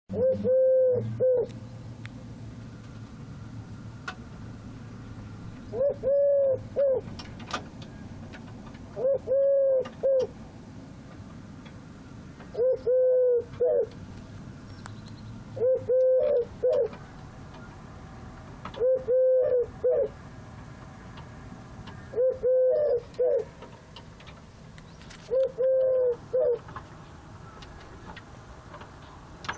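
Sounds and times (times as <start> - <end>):
Eurasian collared dove calling: 0.1 - 1.6, 5.6 - 7.2, 8.9 - 10.4, 12.5 - 14.0, 15.5 - 17.8, 18.7 - 20.2, 21.9 - 23.6, 25.2 - 26.8.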